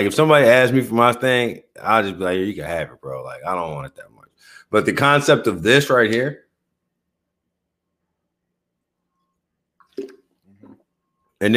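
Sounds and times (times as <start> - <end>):
speech: 0.0 - 4.1, 4.7 - 6.4, 11.4 - 11.5
liquid being poured: 9.3 - 11.0.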